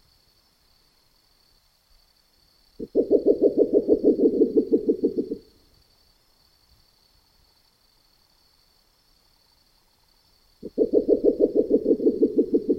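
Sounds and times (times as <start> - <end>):
faint high hiss: 0.0 - 12.7
spectacled owl giving low throbbing hoots in the Neotropics: 2.8 - 5.5, 10.6 - 12.7.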